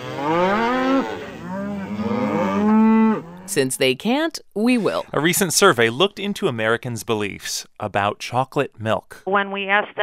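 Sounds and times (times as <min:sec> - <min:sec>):
cow mooing in a long low bellow: 0:00.0 - 0:03.6
speech: 0:03.6 - 0:10.0.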